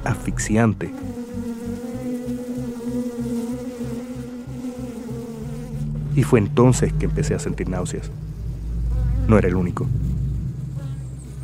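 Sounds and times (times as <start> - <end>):
swarm of thousands of honeybees buzzing: 0.0 - 11.4
speech: 0.2 - 1.2, 6.2 - 8.4, 9.3 - 10.0.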